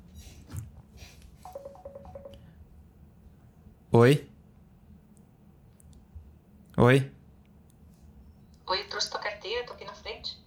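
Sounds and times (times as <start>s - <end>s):
low noise: 0.0s - 10.4s
mobile phone beeping with an incoming call: 1.4s - 2.6s
speech: 3.9s - 4.3s, 6.8s - 7.2s.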